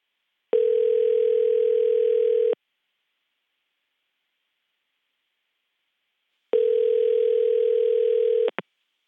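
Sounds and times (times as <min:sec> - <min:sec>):
phone ringback tone on an outgoing call to a cell phone: 0:00.6 - 0:02.6, 0:06.6 - 0:08.5.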